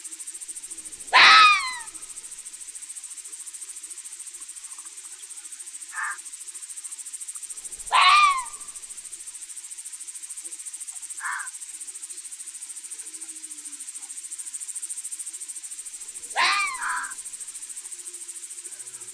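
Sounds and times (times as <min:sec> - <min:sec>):
insect drone: 0:00.0 - 0:19.1
red fox barking: 0:00.8 - 0:02.1, 0:07.7 - 0:08.8, 0:16.2 - 0:17.2
red fox yelp: 0:00.8 - 0:02.2, 0:05.9 - 0:06.2, 0:07.7 - 0:08.9, 0:11.2 - 0:11.5, 0:16.1 - 0:17.2.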